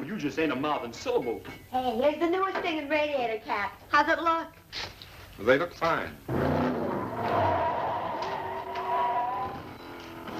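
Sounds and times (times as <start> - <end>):
speech: 0.2 - 6.5
car tires screeching while burning rubber: 6.3 - 10.3
rough car engine roar: 6.3 - 10.3.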